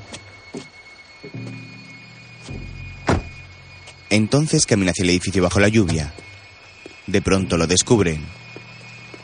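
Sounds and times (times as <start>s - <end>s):
car door thunking as a man gets out of a car: 3.0s - 3.4s
speech: 4.1s - 6.2s, 7.1s - 8.4s.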